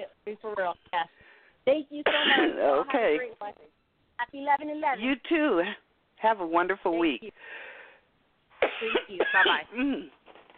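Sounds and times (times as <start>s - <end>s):
speech: 0.3s - 7.7s, 8.8s - 10.2s
person coughing harshly: 2.0s - 2.9s, 8.6s - 10.1s.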